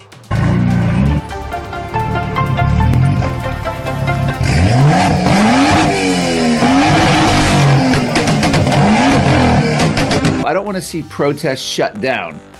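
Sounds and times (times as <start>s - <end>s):
car engine revving in traffic: 0.3s - 10.5s
car tires squealing: 1.9s - 10.4s
speech: 10.8s - 12.5s.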